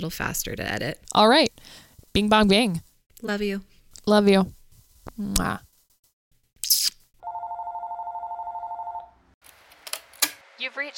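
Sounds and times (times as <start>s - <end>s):
speech: 0.0s - 5.7s, 10.6s - 10.9s
telephone ringing with a long steady electronic trill: 7.2s - 9.2s.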